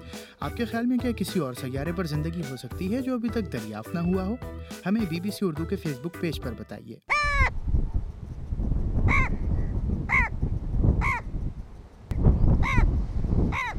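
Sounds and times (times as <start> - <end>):
speech: 0.4 - 7.6
Egyptian vulture harsh rasping calls: 7.1 - 7.6, 9.1 - 9.4, 10.1 - 10.4, 11.0 - 11.3, 12.6 - 12.9, 13.5 - 13.7
constant low rumble of wind: 7.1 - 13.7.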